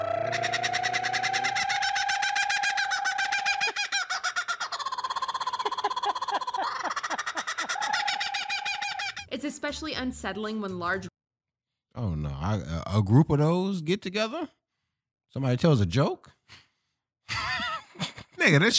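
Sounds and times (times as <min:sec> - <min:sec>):
bird chuckling call: 0:00.0 - 0:09.2
speech: 0:09.4 - 0:11.1, 0:12.5 - 0:14.6, 0:15.4 - 0:16.2, 0:18.4 - 0:18.7.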